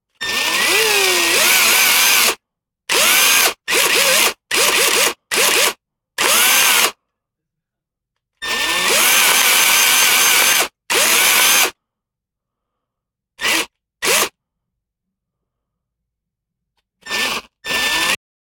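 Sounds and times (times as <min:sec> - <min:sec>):
electric drill burst and rev: 0:00.2 - 0:07.0, 0:08.4 - 0:11.8, 0:13.4 - 0:14.4, 0:17.0 - 0:18.2.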